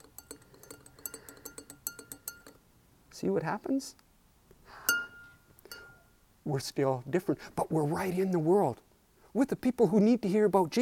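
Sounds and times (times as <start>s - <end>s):
spoon stirring liquid in a glass: 0.0s - 2.6s
speech: 3.2s - 4.0s, 6.5s - 10.8s.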